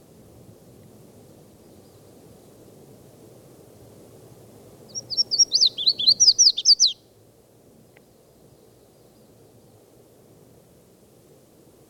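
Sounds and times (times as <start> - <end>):
red-faced warbler singing while flying from tree to tree: 4.9 - 7.0.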